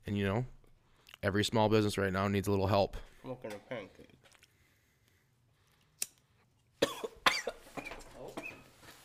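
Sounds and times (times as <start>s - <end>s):
speech: 0.1s - 0.6s, 1.2s - 4.3s
person coughing after inhaling cigar smoke: 6.8s - 8.5s.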